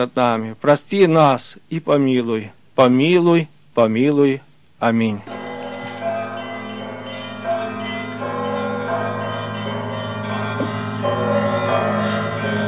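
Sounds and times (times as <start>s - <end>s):
speech: 0.0s - 5.3s
monastery church bells ringing: 5.2s - 12.6s.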